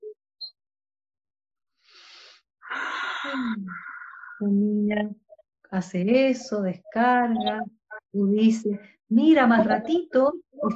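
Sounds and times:
person breathing in and out in a calming breathing exercise: 1.8s - 4.4s
speech: 3.2s - 10.7s.

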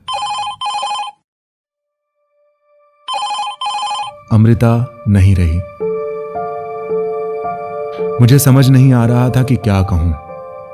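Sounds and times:
telephone ringing: 0.0s - 1.2s, 3.1s - 4.3s
speech: 4.3s - 5.8s, 8.2s - 10.2s.

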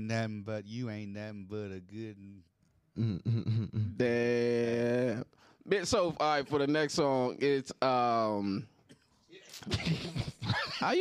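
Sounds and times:
speech: 0.0s - 8.8s, 9.6s - 10.9s
man clearing his throat: 3.0s - 4.1s, 8.9s - 10.8s
man coughing in a rough fit: 8.9s - 10.9s
laughter: 9.5s - 10.9s.

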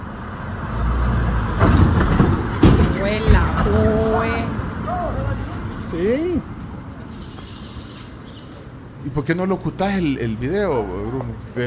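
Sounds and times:
road noise from passing cars: 0.0s - 11.6s
cars thumping over a speed bump: 1.4s - 3.8s
speech: 5.9s - 6.5s, 9.2s - 11.6s.

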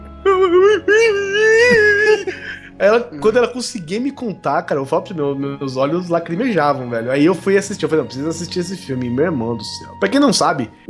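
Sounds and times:
voice imitating crying with wailing sob: 0.2s - 3.6s
speech: 0.4s - 10.8s.

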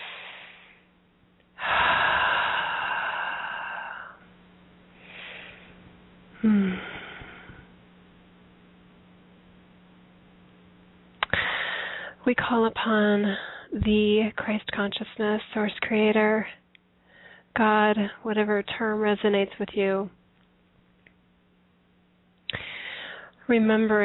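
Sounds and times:
deep breathing in through the nose and out through the mouth: 0.0s - 0.8s, 1.6s - 4.3s, 5.0s - 5.8s, 6.4s - 7.7s, 11.2s - 12.2s, 22.5s - 23.4s
speech: 6.4s - 6.9s, 12.3s - 16.6s, 17.6s - 20.2s, 23.5s - 24.0s.

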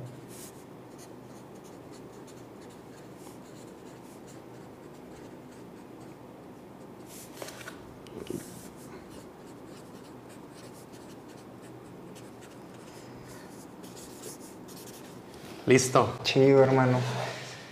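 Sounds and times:
pen scratching on paper writing a quote in a book: 0.3s - 6.2s, 8.3s - 13.0s, 13.8s - 15.2s
speech: 15.7s - 17.3s.

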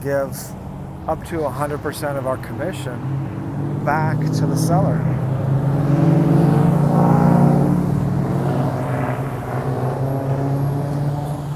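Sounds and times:
speech: 0.0s - 5.2s
loud unmuffled car engine roaring past: 0.0s - 11.5s.

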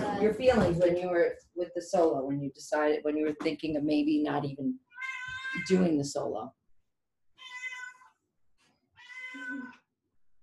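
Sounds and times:
speech: 0.2s - 4.8s, 5.5s - 6.6s
cat meowing: 4.9s - 5.8s, 7.4s - 8.1s, 9.0s - 9.9s.

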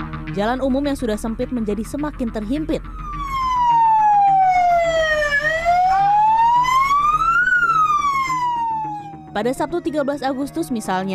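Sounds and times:
speech: 0.3s - 3.1s, 9.3s - 11.1s
fire engine siren wailing: 2.5s - 11.1s.

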